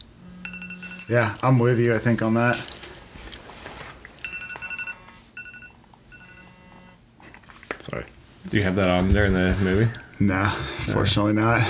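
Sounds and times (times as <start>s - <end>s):
phone alarm chiming bright electronic tones: 0.0s - 1.4s, 4.2s - 7.0s
speech: 1.1s - 2.8s, 8.0s - 11.6s.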